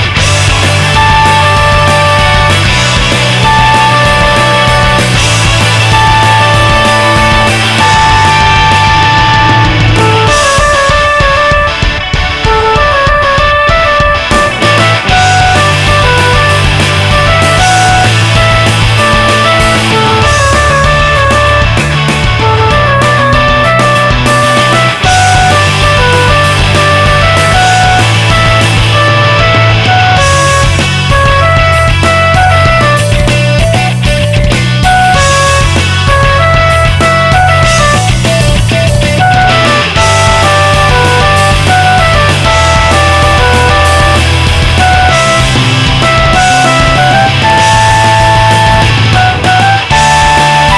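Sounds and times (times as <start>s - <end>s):
synth melody: 0.2s - 50.7s.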